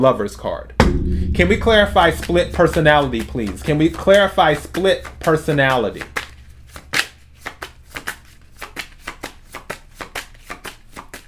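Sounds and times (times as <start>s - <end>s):
speech: 0.0s - 6.1s
tarot cards being shuffled: 6.7s - 11.2s.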